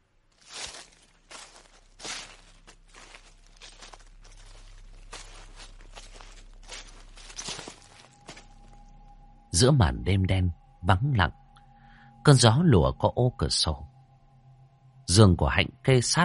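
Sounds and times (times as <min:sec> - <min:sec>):
soft footsteps rustling through a garden at night: 0:00.0 - 0:09.1
speech: 0:09.6 - 0:11.4, 0:12.2 - 0:13.9, 0:15.1 - 0:16.2.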